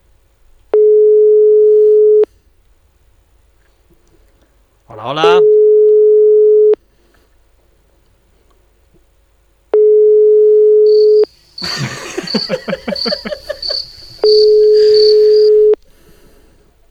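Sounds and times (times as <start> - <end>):
unanswered phone ringback tone: 0.8 - 2.3, 5.2 - 6.8, 9.7 - 11.3, 13.7 - 15.8
speech: 5.0 - 5.5
laughter: 11.6 - 15.7.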